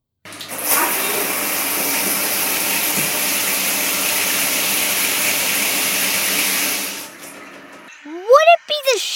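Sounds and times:
shower water spraying down: 0.4s - 8.5s
person's voice: 8.0s - 9.1s.

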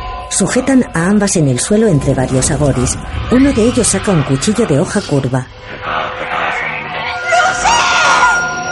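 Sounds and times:
speech: 0.3s - 6.2s
people yelling: 7.1s - 8.6s
child screaming on the ground: 7.2s - 8.5s.

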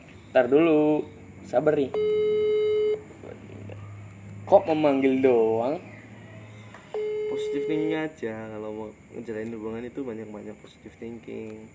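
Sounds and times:
speech: 0.4s - 2.3s, 4.5s - 5.9s, 7.4s - 11.7s
phone call ringing tone: 2.0s - 3.0s, 6.9s - 8.0s.

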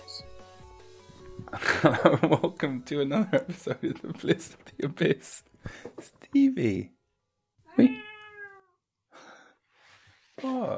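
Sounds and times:
laughter: 1.5s - 5.4s
speech: 1.5s - 7.0s, 10.4s - 10.7s
female cat meowing indoors: 7.7s - 8.8s.

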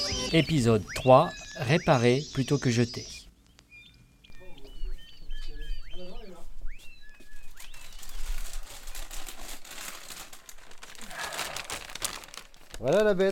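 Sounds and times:
speech: 0.3s - 3.1s, 13.0s - 13.3s
plastic bag full of electronic components crinkling in hands at a repair workshop: 7.5s - 13.3s.

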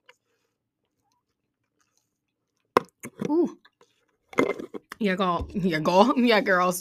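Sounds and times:
person gulping an iced drink: 2.6s - 5.0s
swallowing and mouth noises: 2.6s - 5.0s
speech: 3.3s - 3.6s, 5.0s - 6.7s.

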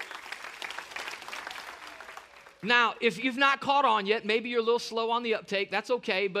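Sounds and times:
room full of people applauding: 0.0s - 2.7s
speech: 2.6s - 6.3s.

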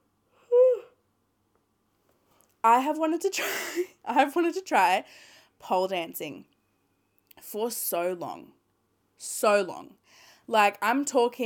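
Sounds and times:
short voiced yawn: 0.4s - 1.0s
speech: 2.6s - 6.5s, 7.4s - 8.6s, 9.2s - 11.4s.

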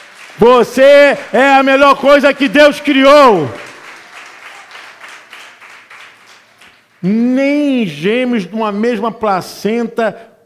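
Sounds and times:
crowd applauding at a preacher's call: 0.0s - 7.2s
speech: 0.4s - 3.6s, 7.0s - 10.3s.

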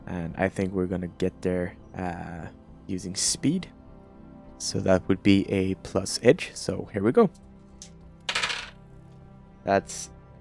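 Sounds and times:
speech: 0.1s - 3.8s, 4.6s - 7.5s, 9.6s - 10.2s
action die and two challenge dice rolling on a hard tabletop: 8.3s - 8.8s.

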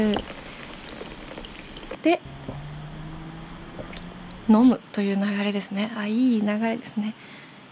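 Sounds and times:
speech: 0.0s - 0.4s, 2.0s - 2.3s, 4.5s - 7.4s
carbonated drink poured fizzing into a glass: 0.0s - 2.0s.

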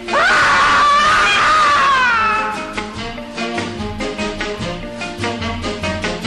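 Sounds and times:
person screaming in a novelty song: 0.0s - 2.8s
bouncy rhythmic band tune from a 1959 novelty song: 0.0s - 6.2s.

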